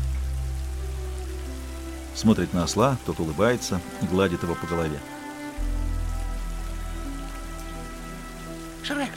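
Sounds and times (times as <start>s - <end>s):
steady rain falling outside: 0.0s - 9.1s
speech: 2.2s - 5.2s.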